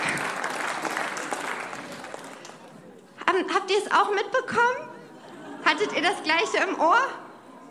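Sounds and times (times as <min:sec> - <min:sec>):
audience applause: 0:00.0 - 0:02.7
speech: 0:03.4 - 0:04.9, 0:05.7 - 0:07.2.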